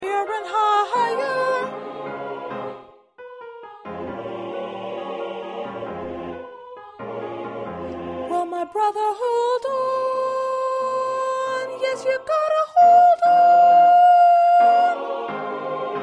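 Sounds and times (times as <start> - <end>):
small group of sopranos singing: 0.0 - 3.1, 3.8 - 16.0.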